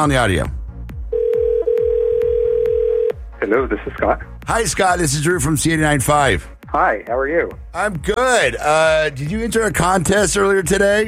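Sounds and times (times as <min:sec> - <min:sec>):
speech: 0:00.0 - 0:00.6, 0:03.4 - 0:11.0
telephone line tone while dialing a number for an on-air radio call: 0:01.1 - 0:03.2.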